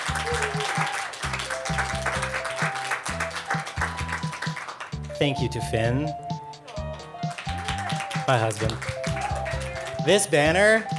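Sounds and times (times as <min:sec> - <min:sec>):
crowd applauding: 0:00.0 - 0:05.0, 0:06.6 - 0:10.9
upbeat music with a pulsing bass line and short melodic notes: 0:00.0 - 0:10.9
speech: 0:05.2 - 0:06.2, 0:08.3 - 0:09.0, 0:10.0 - 0:10.9.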